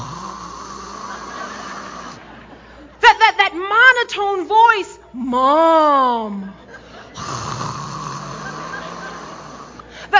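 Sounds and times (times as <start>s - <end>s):
person imitating a tween's irritated snore-like guttural breathing: 0.0s - 2.2s, 7.1s - 10.1s
laughter: 0.6s - 3.1s, 6.2s - 10.1s
speech: 4.1s - 6.6s.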